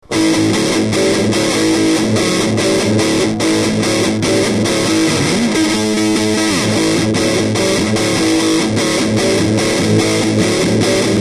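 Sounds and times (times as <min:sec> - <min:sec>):
boogie music: 0:00.2 - 0:11.1.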